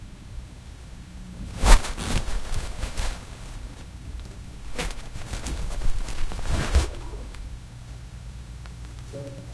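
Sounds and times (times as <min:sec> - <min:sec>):
soft rustle of bags: 0:01.4 - 0:08.0.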